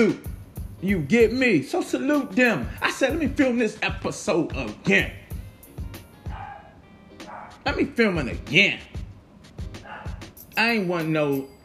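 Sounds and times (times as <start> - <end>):
speech: 0.0 - 5.2, 7.6 - 9.0, 10.6 - 11.5
dog barking: 6.2 - 7.6, 9.8 - 10.4.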